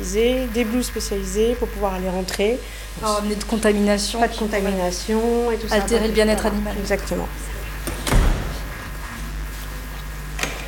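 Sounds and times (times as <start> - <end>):
speech: 0.0 - 7.5
steady low hum: 0.0 - 10.6
heavy airlock door to an animal housing facility unlatching with a thud: 7.8 - 8.9.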